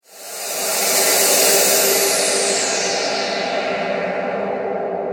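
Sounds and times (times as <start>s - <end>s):
high breathy transition effect: 0.0s - 5.0s.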